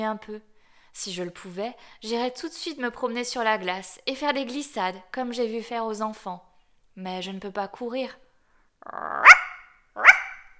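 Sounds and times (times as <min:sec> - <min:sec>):
speech: 0:00.0 - 0:08.2, 0:08.8 - 0:09.4
guard dog barking hoarsely: 0:08.9 - 0:10.5.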